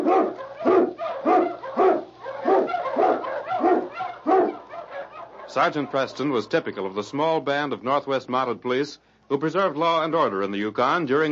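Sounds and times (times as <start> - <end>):
husky sled dog barking: 0.0 - 6.6
faint low hum: 0.0 - 11.3
speech: 5.5 - 11.3.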